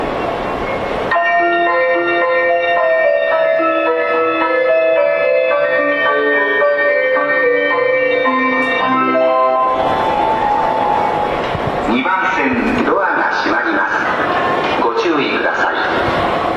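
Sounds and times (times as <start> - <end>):
train station departure melody: 0.0 - 16.5.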